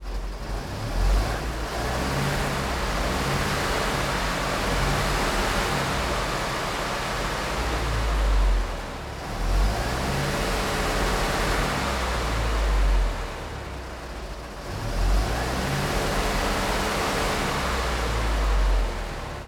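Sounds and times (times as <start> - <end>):
1968 SKOT OT-64 armoured vehicle engine idling and revving, onboard in the driver's compartment: 0.0 - 19.4.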